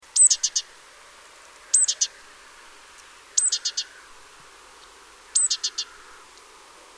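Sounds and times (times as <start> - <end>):
great tit Parus major calling: 0.1 - 0.7, 1.7 - 2.2, 3.3 - 4.1, 5.3 - 6.2.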